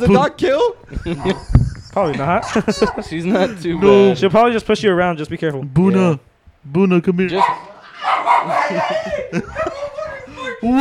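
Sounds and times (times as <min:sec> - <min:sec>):
speech: 0:00.0 - 0:07.7, 0:08.4 - 0:09.8, 0:10.6 - 0:10.7
laughter: 0:00.9 - 0:04.3, 0:07.8 - 0:10.7
dog barking and yipping: 0:02.4 - 0:04.2, 0:07.3 - 0:08.9.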